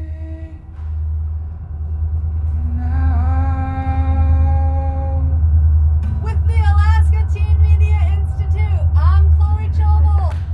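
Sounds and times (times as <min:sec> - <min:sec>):
heavy continuous low rumble: 0:00.0 - 0:10.5
steady metallic whine: 0:00.0 - 0:10.5.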